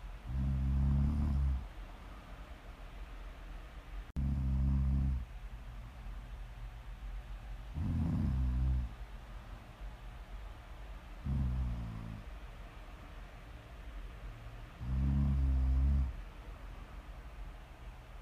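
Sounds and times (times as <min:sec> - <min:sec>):
faint steady hiss: 0:00.0 - 0:18.2
person snoring deeply: 0:00.3 - 0:01.6, 0:04.2 - 0:05.2, 0:07.8 - 0:08.9, 0:11.2 - 0:12.2, 0:14.8 - 0:16.1.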